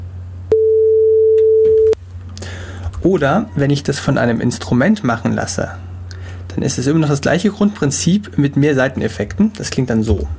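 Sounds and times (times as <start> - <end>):
faint low hum: 0.0 - 10.3
pure sine tone without overtones generated on a PC: 0.5 - 2.0
speech: 3.0 - 5.9, 6.6 - 10.3.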